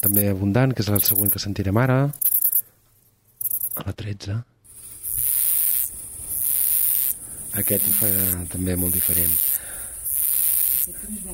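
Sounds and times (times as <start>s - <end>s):
cricket giving a high-pitched trill: 0.0s - 0.2s, 1.0s - 1.4s, 2.1s - 2.6s, 3.4s - 3.8s, 4.7s - 11.0s
speech: 0.0s - 2.3s, 3.8s - 4.5s, 7.6s - 9.5s, 10.9s - 11.3s.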